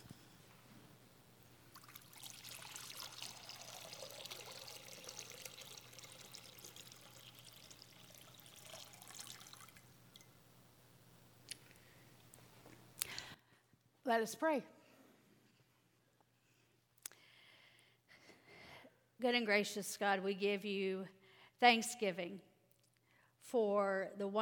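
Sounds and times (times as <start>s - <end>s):
water poured into a baptismal font: 1.8s - 10.3s
speech: 14.1s - 14.7s, 19.2s - 22.5s, 23.5s - 24.4s.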